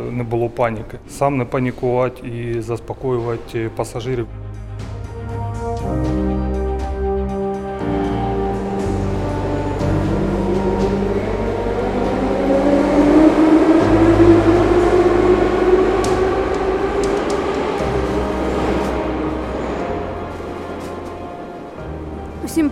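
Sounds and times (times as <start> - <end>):
speech: 0.0 - 4.4
subway train rumbling through a metro station: 0.0 - 22.6
low mechanical droning: 7.8 - 22.4.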